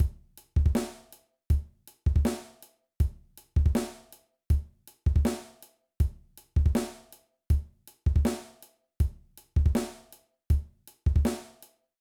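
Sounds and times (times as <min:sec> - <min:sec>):
kick drum technique exercise: 0:00.0 - 0:00.8, 0:01.5 - 0:02.2, 0:03.0 - 0:03.9, 0:04.5 - 0:05.2, 0:06.0 - 0:06.9, 0:07.5 - 0:08.3, 0:09.0 - 0:09.9, 0:10.5 - 0:11.3.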